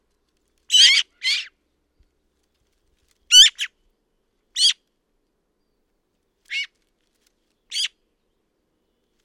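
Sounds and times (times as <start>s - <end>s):
Eurasian magpie Pica pica giving harsh chattering calls: 0.7s - 1.5s, 3.3s - 3.7s, 7.7s - 7.9s.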